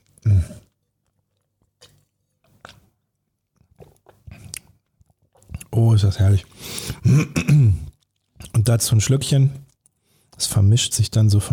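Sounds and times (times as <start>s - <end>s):
wet chewing and smacking of a cube of blue cheese: 0.0s - 7.0s, 7.8s - 9.0s, 9.6s - 10.4s
speech: 5.8s - 7.8s, 8.7s - 9.6s, 10.4s - 11.5s.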